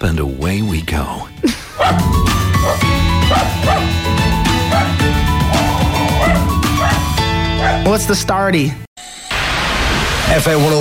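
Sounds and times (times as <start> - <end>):
speech: 0.0 - 4.2, 7.9 - 8.9, 10.3 - 10.7
musical backing: 0.8 - 8.3
dog barking: 1.8 - 4.0, 4.7 - 7.9.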